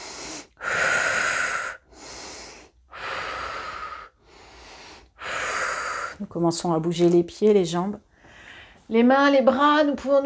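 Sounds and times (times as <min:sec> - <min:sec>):
slow deep breaths in and out during a sophrology session: 0:00.0 - 0:06.3, 0:08.1 - 0:08.9
speech: 0:06.2 - 0:08.1, 0:08.9 - 0:10.2.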